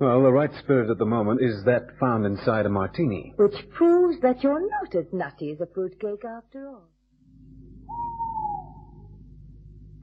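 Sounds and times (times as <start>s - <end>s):
speech: 0.0s - 7.0s
low rumbling background: 7.3s - 10.0s
owl hooting: 7.8s - 9.2s.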